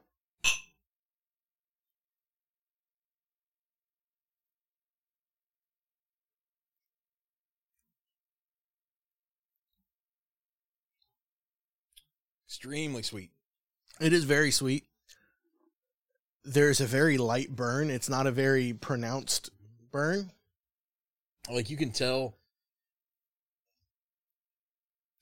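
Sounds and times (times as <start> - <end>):
glasses of bourbon clinking in a toast: 0.4 - 0.8
speech: 12.5 - 13.4, 14.0 - 14.9, 16.4 - 20.4, 21.5 - 22.4.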